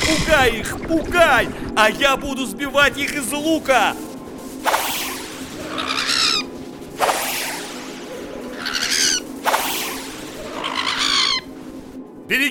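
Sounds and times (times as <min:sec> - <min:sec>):
speech: 0:00.1 - 0:04.8, 0:12.3 - 0:12.5
sharp whooshing rush of bird wings: 0:04.0 - 0:12.0
whistling: 0:04.6 - 0:11.7
attacking birds screeching: 0:05.0 - 0:11.6.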